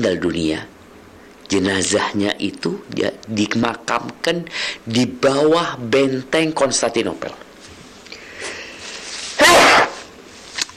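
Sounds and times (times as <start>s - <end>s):
speech: 0.0s - 0.8s, 1.5s - 7.4s
faint hiss: 0.0s - 10.7s
loud sneeze: 9.3s - 10.1s.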